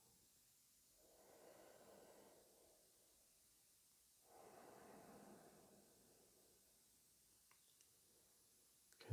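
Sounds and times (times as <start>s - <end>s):
deep breathing in and out: 1.0s - 3.3s, 4.2s - 6.8s
faint click: 7.4s - 8.0s.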